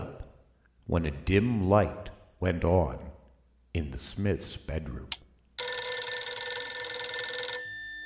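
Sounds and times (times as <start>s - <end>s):
speech: 0.9s - 3.1s, 3.7s - 5.2s
telephone bell ringing: 5.6s - 8.0s.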